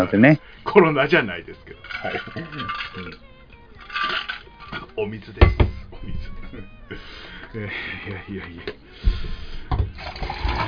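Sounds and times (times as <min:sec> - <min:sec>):
speech: 0:00.0 - 0:03.3, 0:04.0 - 0:10.6
glasses clinking together in a toast: 0:01.6 - 0:06.4
laughter: 0:07.4 - 0:08.8.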